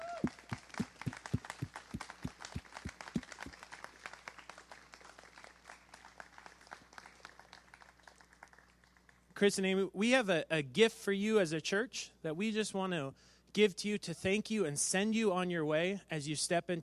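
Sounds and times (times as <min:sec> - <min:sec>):
crowd applauding in a large room: 0:00.0 - 0:09.2
speech: 0:09.4 - 0:16.8.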